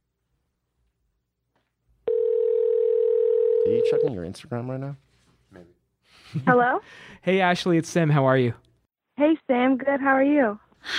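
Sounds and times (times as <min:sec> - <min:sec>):
telephone dial tone while placing a call: 0:02.1 - 0:04.1
speech: 0:03.7 - 0:08.6, 0:09.2 - 0:10.9.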